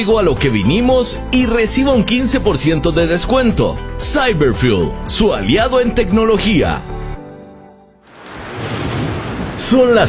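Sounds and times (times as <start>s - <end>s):
speech: 0.0s - 7.0s, 9.6s - 10.0s
steady rain on a cold early morning: 8.1s - 10.0s.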